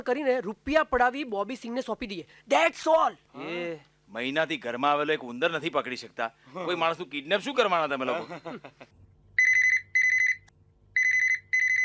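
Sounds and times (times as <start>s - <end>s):
speech: 0.0s - 9.0s
laughter: 8.0s - 8.9s
electronic telephone ringtone: 9.4s - 11.8s.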